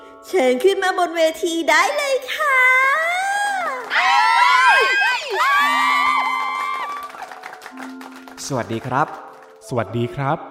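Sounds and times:
speech: 0:00.3 - 0:03.3, 0:07.8 - 0:10.5
dense crowd of fans screaming and cheering: 0:03.8 - 0:08.0.

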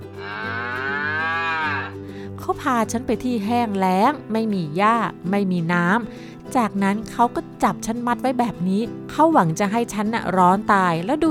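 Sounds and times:
cow mooing: 0:00.0 - 0:02.0
speech: 0:02.5 - 0:11.2.

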